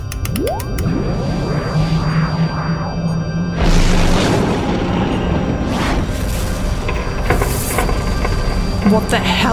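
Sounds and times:
rising zap of sci-fi cannon fire from a warship: 0.2 - 6.8
continuous low rumble: 0.4 - 9.5
speech: 8.9 - 9.5.

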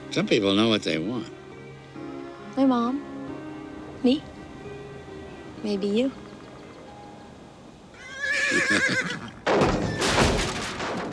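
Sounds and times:
speech: 0.2 - 1.4, 2.6 - 3.1, 4.0 - 4.3, 5.6 - 6.2, 8.5 - 9.7
horse whinnying in a barn: 7.9 - 10.2
horse snorting or shifting in a barn: 8.0 - 9.5.

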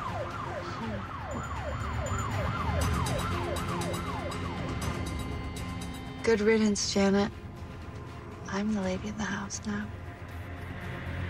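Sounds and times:
police car siren yelping while speeding past: 0.0 - 6.2
low rumble of traffic: 0.0 - 11.2
speech: 6.3 - 7.4, 8.5 - 10.0.

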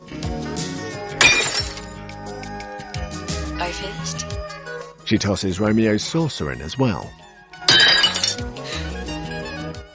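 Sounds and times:
soft steady musical background: 0.0 - 9.9
drinking glass shattering in a fireplace: 1.2 - 1.9, 7.7 - 8.5
speech: 3.7 - 7.3.

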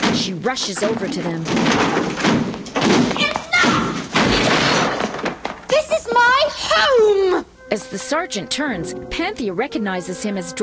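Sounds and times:
soldiers battering down a door off a house corridor: 0.0 - 5.8
speech: 0.2 - 4.4, 6.8 - 10.6
voices shouting: 3.2 - 4.1, 5.7 - 7.6.

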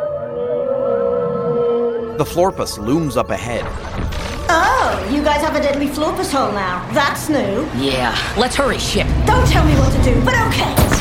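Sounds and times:
eerie calls of whale-like creatures: 0.0 - 5.3
speech: 2.2 - 10.9.

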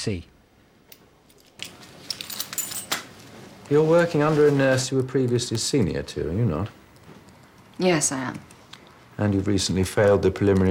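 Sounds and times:
speech: 0.0 - 0.3, 3.7 - 6.8, 7.8 - 8.5, 9.2 - 10.6
keys clinking and jingling as they are slipped into a pocket: 1.3 - 3.1.

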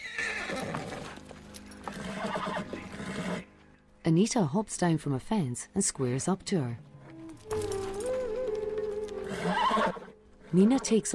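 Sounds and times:
pony neighing: 0.0 - 1.2, 1.9 - 3.5, 9.2 - 11.0
pony hooves clip-clopping as it is ridden and turned: 0.4 - 4.0, 6.8 - 9.8
speech: 4.1 - 6.9, 10.5 - 11.1.

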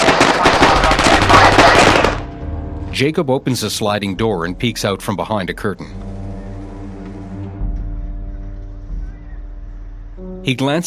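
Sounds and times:
video game gunfire as a man is shot beside a police car: 0.0 - 2.2
speech: 3.0 - 6.1, 10.4 - 10.8.

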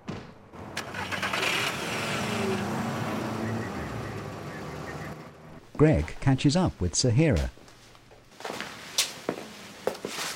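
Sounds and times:
car engine starting and revving as the vehicle pulls away: 0.6 - 5.6
speech: 5.8 - 7.6.

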